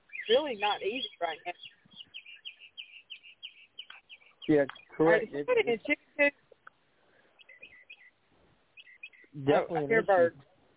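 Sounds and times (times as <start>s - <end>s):
many birds chirping in a tree outside: 0.0s - 10.7s
speech: 0.3s - 1.8s, 4.5s - 6.4s, 9.3s - 10.5s
voice-like bursts: 9.4s - 10.3s.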